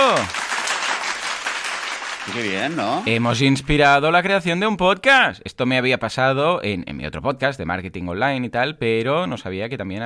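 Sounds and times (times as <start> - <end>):
crowd applauding: 0.0 - 3.8
speech: 0.1 - 0.4, 2.3 - 10.0.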